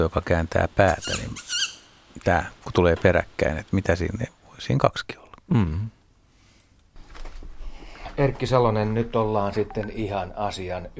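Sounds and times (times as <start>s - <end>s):
speech: 0.0s - 1.4s, 2.2s - 6.0s, 8.2s - 10.9s
owl chick begging call: 0.9s - 2.0s.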